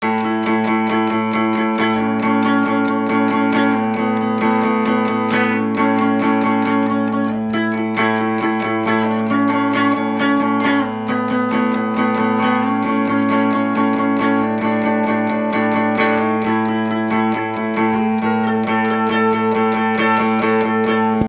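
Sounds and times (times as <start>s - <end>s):
guitar double stop riff: 0.0s - 21.2s.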